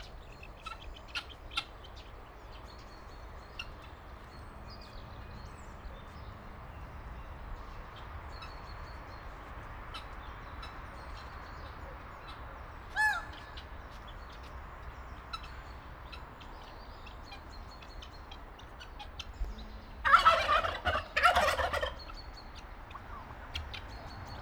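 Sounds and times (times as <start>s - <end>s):
guineafowl calling in zoo farmyard in Nyíregyháza Hungary: 0.0s - 2.9s, 3.5s - 4.3s, 9.8s - 24.4s
turkey gobbling in zoo farmyard in Nyíregyháza Hungary: 0.6s - 2.1s, 11.9s - 14.4s, 18.0s - 24.4s.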